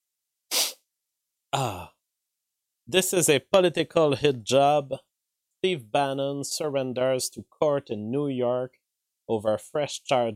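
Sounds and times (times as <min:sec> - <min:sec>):
person sneezing: 0:00.5 - 0:00.8
speech: 0:01.5 - 0:01.9, 0:02.9 - 0:10.3.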